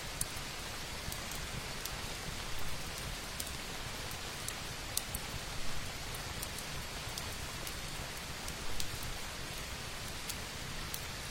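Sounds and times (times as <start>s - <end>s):
gentle rain falling: 0.0s - 11.2s
burning firewood crackling and popping: 0.1s - 11.2s.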